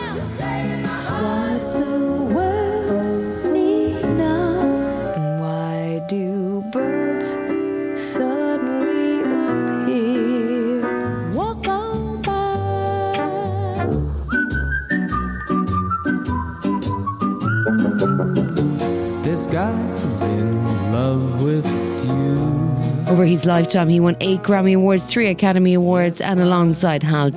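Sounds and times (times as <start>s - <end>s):
medley of classic pop song excerpts with band accompaniment: 0.0s - 27.3s
bright whistle-like melodic lead: 13.8s - 19.6s
speech: 23.1s - 27.3s.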